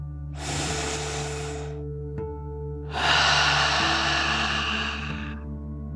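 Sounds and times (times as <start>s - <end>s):
deep breath in through the nose and out through the mouth: 0.4s - 1.8s, 2.9s - 5.5s.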